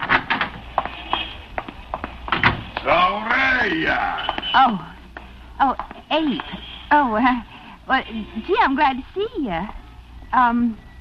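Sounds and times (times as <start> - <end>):
wooden knocks and rattles: 0.0 - 0.9, 1.6 - 2.8
door opening and closing: 0.0 - 1.3, 2.3 - 2.8
speech: 3.7 - 4.9, 5.6 - 10.8.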